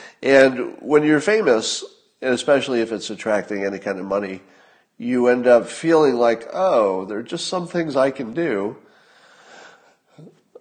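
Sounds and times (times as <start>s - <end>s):
speech: 0.2s - 8.9s, 10.2s - 10.4s
raspy wheezing exhale after laughing: 8.9s - 10.0s.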